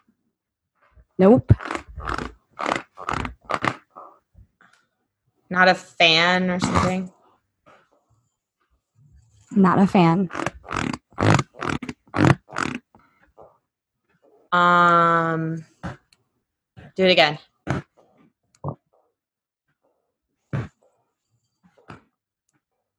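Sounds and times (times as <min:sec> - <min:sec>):
speech: 0:01.2 - 0:01.8, 0:05.6 - 0:07.2, 0:09.6 - 0:10.4, 0:14.5 - 0:15.7, 0:17.0 - 0:17.5
bouncy office chair creaking and squeaking: 0:01.3 - 0:04.1, 0:10.0 - 0:13.0.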